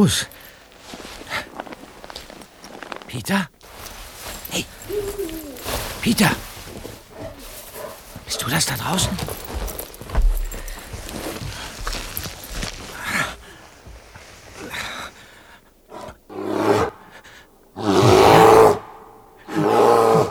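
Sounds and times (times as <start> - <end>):
speech: 0.0 - 0.5, 3.1 - 3.6, 4.5 - 5.4, 6.0 - 6.5, 8.3 - 9.4
heavy footsteps crunching and thudding outside: 0.0 - 14.8
bear roaring and growling: 4.7 - 5.9, 15.9 - 17.1, 17.8 - 20.2.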